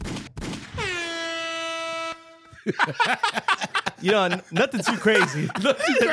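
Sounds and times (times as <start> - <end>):
air horn blast: 0.8 - 2.5
laughter: 2.6 - 6.1
speech: 2.6 - 6.1.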